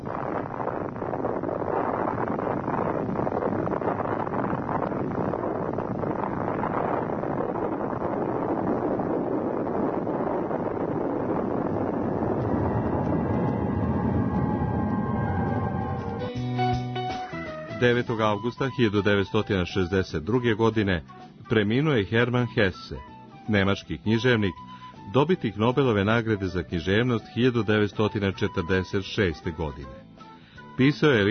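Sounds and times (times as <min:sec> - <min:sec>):
massive atomic bomb explosion roar and rumble: 0:00.0 - 0:16.8
speech: 0:17.8 - 0:30.0, 0:30.8 - 0:31.2.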